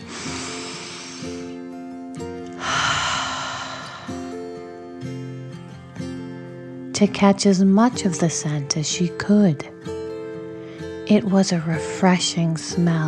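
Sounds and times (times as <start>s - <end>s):
deep inhale and slow exhale: 0.0s - 1.8s, 2.4s - 4.9s
soft music with sustained tones: 0.0s - 13.0s
speech: 7.0s - 9.7s, 11.1s - 13.0s.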